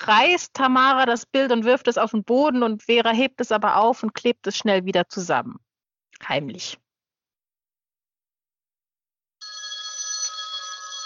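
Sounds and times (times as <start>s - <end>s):
speech: 0.1s - 5.6s, 6.2s - 6.8s
telephone ringing with electronic bell tone: 9.4s - 11.0s.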